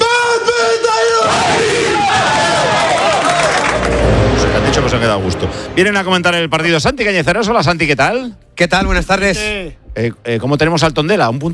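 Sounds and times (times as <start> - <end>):
football players yelling and cheering: 0.0 - 4.1
football players shouting a collective battle cry in a locker room: 1.2 - 3.5
speech: 5.0 - 11.5.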